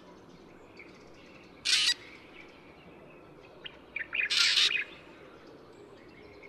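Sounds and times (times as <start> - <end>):
black drongo giving harsh rasping bursts at Yushan: 1.6 - 2.2, 4.1 - 5.0.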